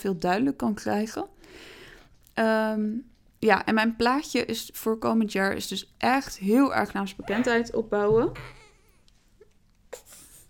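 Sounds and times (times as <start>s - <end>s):
speech: 0.0s - 1.8s, 2.4s - 8.6s
baby fussing and crying: 8.4s - 8.9s.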